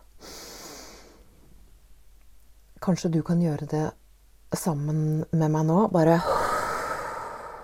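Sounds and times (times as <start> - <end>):
deep airy breath drawn in: 0.2 - 1.3, 6.2 - 7.6
speech: 2.8 - 6.4.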